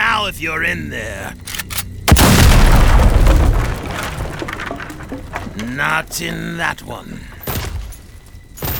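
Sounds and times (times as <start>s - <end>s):
speech: 0.3s - 1.8s, 5.1s - 7.3s
explosion blowing up a mud hut: 2.1s - 5.6s.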